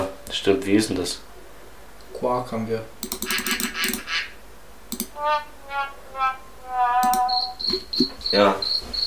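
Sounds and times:
speech: 0.3 - 1.3, 2.2 - 4.0, 5.2 - 8.9
sharp clicks: 3.0 - 4.1, 4.9 - 5.2
thin high whistle: 6.7 - 7.8
cricket chirping in short repeated trills: 6.7 - 9.0.

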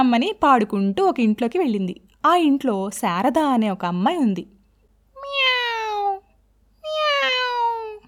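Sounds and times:
speech: 0.0 - 4.6
kitten meowing: 5.2 - 8.0.

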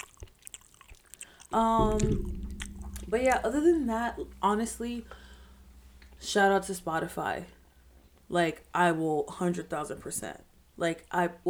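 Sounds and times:
wet chewing close to the microphone: 0.0 - 6.3
speech: 1.5 - 2.4, 3.1 - 5.2, 6.2 - 7.6, 8.3 - 11.4.

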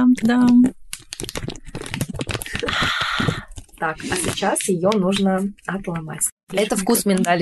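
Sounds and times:
plastic packet of an almond-cherry cookie crinkling open: 0.1 - 4.7
speech: 0.2 - 1.3, 3.8 - 7.3.

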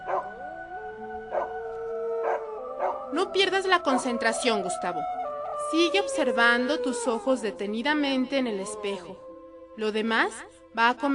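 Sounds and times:
dogs yelping: 0.0 - 0.4, 2.2 - 3.0
two dogs howling: 0.0 - 4.7
speech: 3.1 - 11.1.

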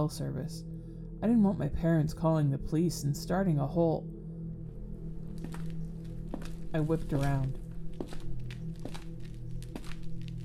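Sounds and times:
speech: 0.0 - 4.1, 6.7 - 8.3
low droning hum: 0.6 - 10.4
heavy footsteps approaching: 5.2 - 10.4.

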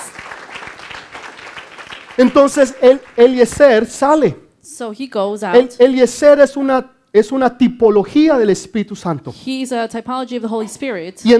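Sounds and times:
audience applauding: 0.0 - 3.9
speech: 2.2 - 11.3.

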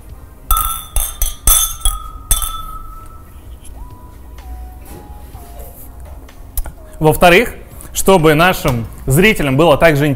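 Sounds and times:
glasses clinking in a toast: 0.5 - 3.4
speech: 7.0 - 10.1.

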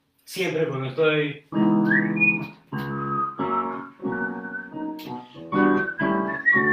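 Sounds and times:
speech: 0.3 - 2.9
person whistling a melody: 1.8 - 6.7.

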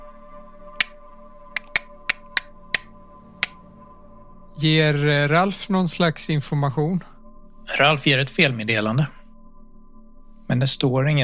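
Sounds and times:
sharp crisp clicks: 0.8 - 1.0, 1.6 - 3.6
speech: 4.6 - 7.1, 7.8 - 9.2, 10.5 - 11.2.

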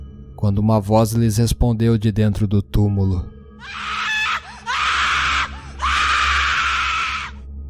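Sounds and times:
speech: 0.4 - 4.0
shrill inhuman wailing scream: 3.6 - 7.4.

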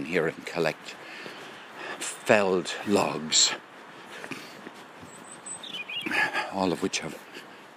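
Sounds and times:
speech: 0.0 - 1.3, 2.0 - 3.7, 6.0 - 7.3
outdoor ambience: 0.0 - 7.7
bird chirping and whistling in woodland: 5.1 - 6.1.

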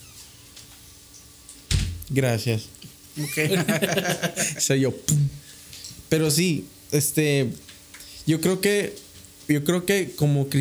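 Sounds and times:
recording studio door shutting with a solid thud: 1.7 - 2.1
speech: 2.1 - 5.4, 6.1 - 10.5
laughter: 3.2 - 4.7.

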